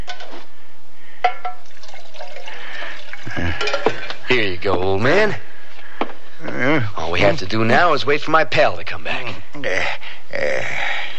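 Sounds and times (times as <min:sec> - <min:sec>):
light clink of glass: 0:01.2 - 0:04.2
water pouring into a cup: 0:01.6 - 0:04.2
speech: 0:03.4 - 0:05.4, 0:06.6 - 0:11.0.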